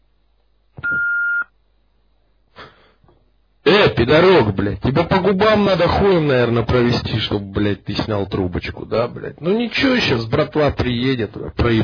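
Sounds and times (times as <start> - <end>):
answering machine high-pitched beep: 0.8 - 1.5
speech: 4.0 - 11.8.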